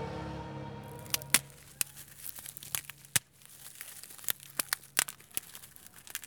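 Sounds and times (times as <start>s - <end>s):
low rumble: 0.0s - 1.6s
roots cracking and snapping: 0.8s - 6.2s.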